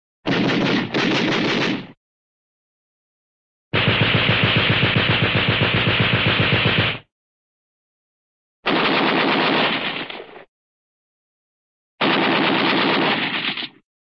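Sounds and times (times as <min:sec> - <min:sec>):
cartoon 50 caliber machine gun firing: 0:00.3 - 0:02.0, 0:03.7 - 0:07.1, 0:08.7 - 0:10.3, 0:12.0 - 0:13.8.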